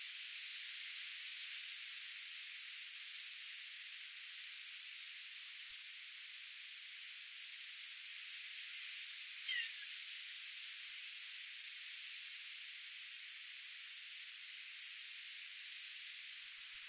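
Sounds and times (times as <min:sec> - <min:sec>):
faint background hiss: 0:00.0 - 0:16.8
Chestnut-sided warbler Setophaga pensylvanica singing: 0:05.1 - 0:05.9, 0:09.4 - 0:11.4, 0:15.9 - 0:16.8.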